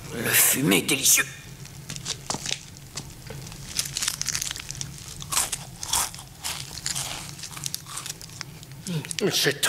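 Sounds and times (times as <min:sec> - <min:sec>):
speech: 0:00.3 - 0:01.4, 0:09.3 - 0:09.6
crunching and chewing of crispy stir-fried beef noodles: 0:01.9 - 0:09.3.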